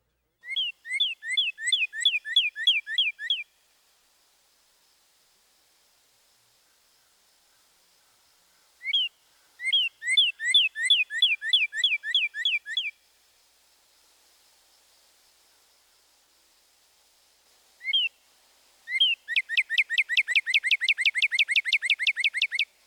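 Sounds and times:
northern cardinal singing two-note purdy whistle song: 0.4s - 3.6s, 8.8s - 13.0s, 17.8s - 18.2s, 18.8s - 22.8s.

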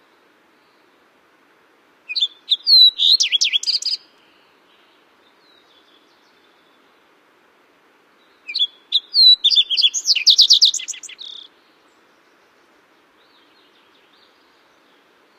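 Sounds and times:
Fox Sparrow singing: 2.1s - 7.0s, 8.2s - 15.3s.

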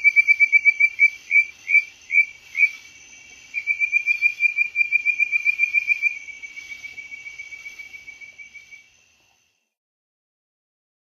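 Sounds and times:
bird-voiced treefrog whistled trill in North America: 0.0s - 2.9s, 3.5s - 9.0s.

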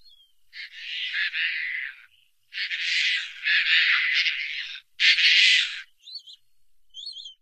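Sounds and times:
Caspian tern calling with harsh grating rasps: 0.0s - 6.4s.

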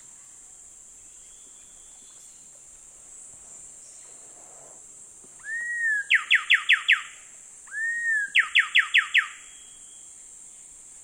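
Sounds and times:
Coraya wren song in the eastern lowlands of South America: 5.4s - 10.1s.

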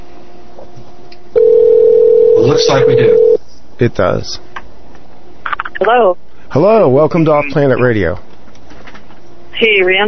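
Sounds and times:
steady electronic telephone tone signalling an incoming caller on a radio call-in show: 1.4s - 3.4s
speech: 2.5s - 4.5s, 5.9s - 8.3s, 9.6s - 10.0s.

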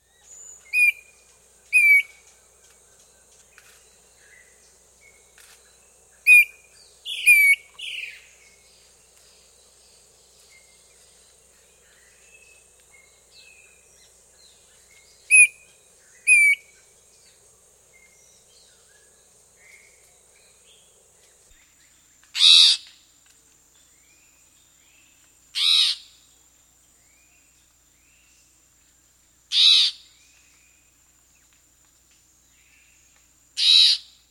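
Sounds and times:
Chestnut-backed antbird calling in South America: 0.0s - 2.4s, 4.2s - 9.0s, 10.5s - 20.8s, 22.4s - 23.0s, 25.6s - 26.2s, 29.5s - 30.2s, 33.6s - 34.2s.

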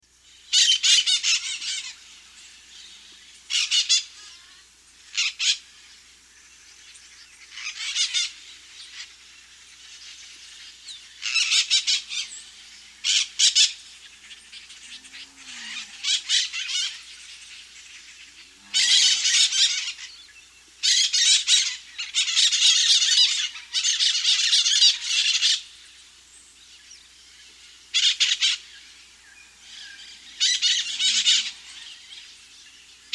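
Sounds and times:
Crimson-fronted parakeet in South America: 0.5s - 2.0s, 3.5s - 4.4s, 5.1s - 5.6s, 7.4s - 9.2s, 10.8s - 12.4s, 13.0s - 13.8s, 18.6s - 25.7s, 27.9s - 28.8s, 29.7s - 32.3s.

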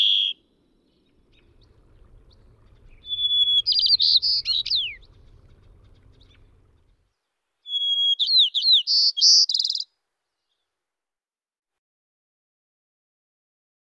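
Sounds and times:
white-crowned sparrow singing: 0.0s - 7.0s, 7.6s - 9.9s
low rumble: 1.0s - 7.1s.

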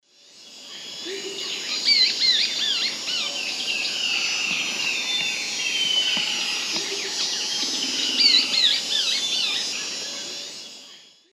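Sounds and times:
Myrmotherula longipennis longipennis alternate song in South American Eastern Lowlands: 1.6s - 10.4s.

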